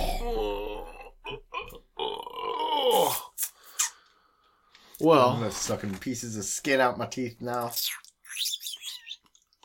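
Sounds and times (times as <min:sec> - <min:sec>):
burp-like grunts: 0:00.0 - 0:03.3
full man groaning after a meal of fish and chicken: 0:00.0 - 0:03.3
speech: 0:05.0 - 0:08.6.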